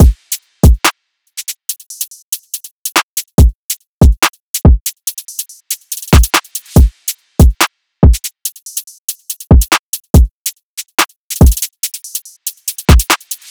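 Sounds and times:
drill drum loop: 0.0 - 13.5.

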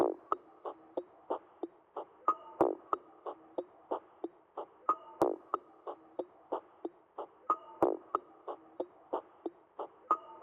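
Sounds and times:
textured drum loop: 0.0 - 10.4.

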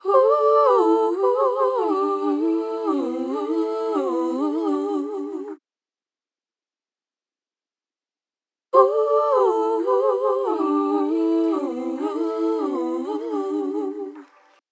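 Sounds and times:
dry soul vocal ad libs in C major at 110 BPM: 0.0 - 5.6, 8.8 - 14.5.

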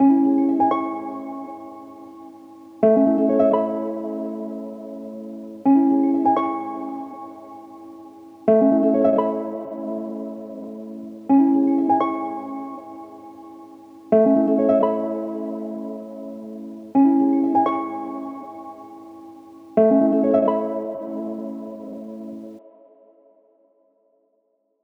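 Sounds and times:
wet harp loop in G# minor at 85 BPM: 0.0 - 22.6.

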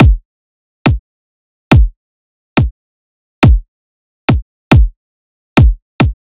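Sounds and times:
kick drum loop: 0.0 - 0.2, 1.7 - 2.0, 3.4 - 3.7, 4.3 - 5.0, 5.6 - 6.2.

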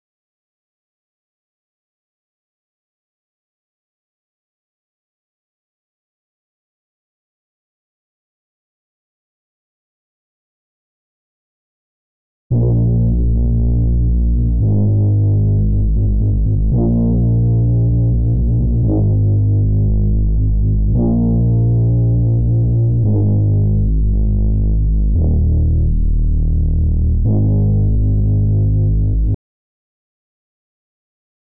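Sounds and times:
bass loop in D sharp minor at 114 BPM: 12.5 - 29.4.

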